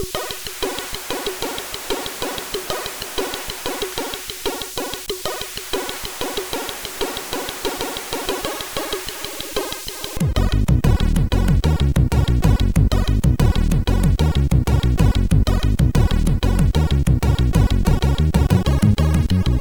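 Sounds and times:
MOS6581R4 synth bassline: 0.0s - 19.5s.

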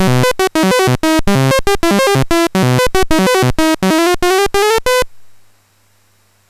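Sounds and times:
MOS 6581 SID chip game music: 0.0s - 5.1s.

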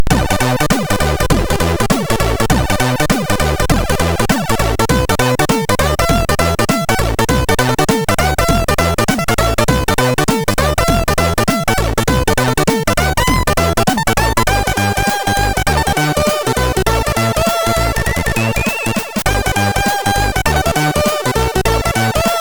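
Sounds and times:
fusion jazz on a MOS6581R3 SID chip: 0.0s - 22.3s.

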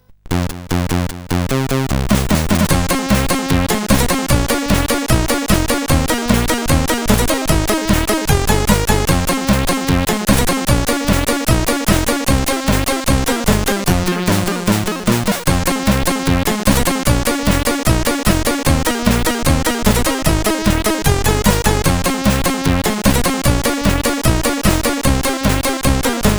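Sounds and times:
tropical chiptune music from a SID CSG8580R5 chip: 0.3s - 26.3s.

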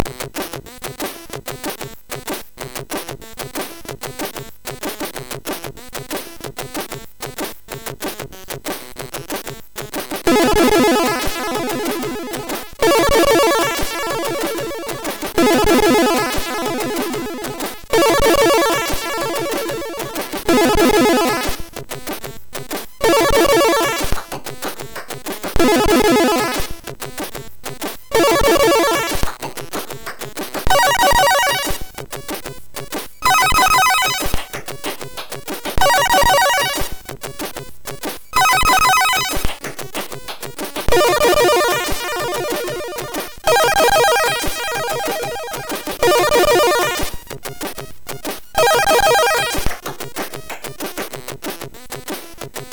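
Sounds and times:
MOS6581 chiptune intro music: 10.3s - 21.6s, 23.0s - 24.1s, 25.6s - 26.7s, 28.1s - 29.2s, 30.7s - 31.8s, 33.2s - 34.4s, 35.8s - 37.0s, 38.4s - 39.5s, 40.9s - 47.2s, 48.6s - 49.7s.

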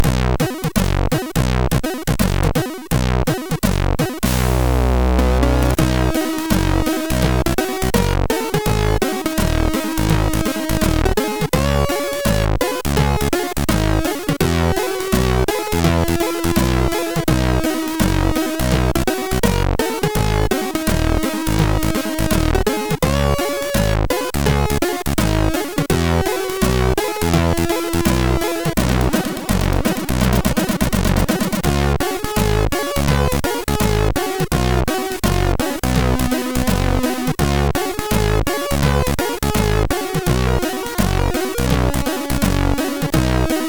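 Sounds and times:
jazz music on a MOS6581R3 sound chip: 0.0s - 43.6s.

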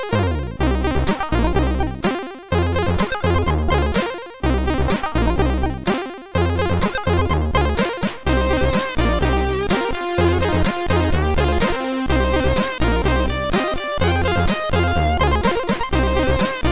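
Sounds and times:
MOS6581R2 chip music: 0.1s - 16.7s.

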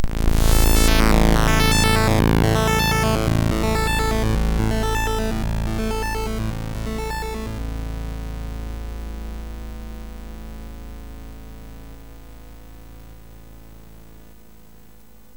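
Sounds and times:
MOS6581R4 sound chip startup sound: 0.2s - 7.7s.

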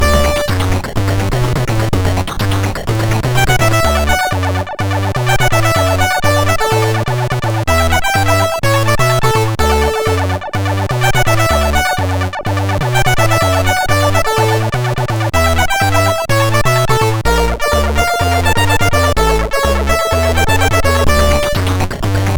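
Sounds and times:
chiptune synth melody on a MOS6581R4 sound chip: 0.0s - 22.3s.

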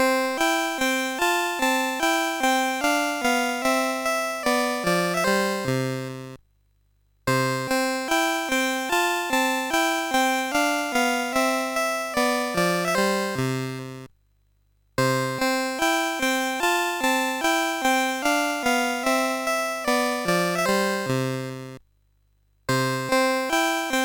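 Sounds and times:
chiptune music on MOS6581R2 sound chip: 0.3s - 6.4s, 7.6s - 14.1s, 15.2s - 21.8s, 22.7s - 24.0s.

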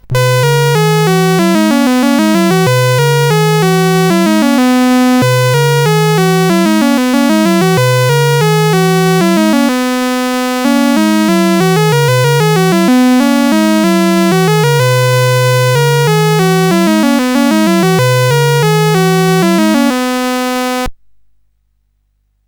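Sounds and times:
MOS 8580 SID chip game music: 0.0s - 20.9s.

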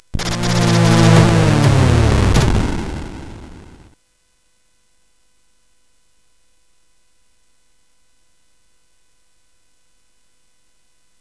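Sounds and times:
chiptune music on a SID 8580R5 chip: 0.1s - 3.9s.

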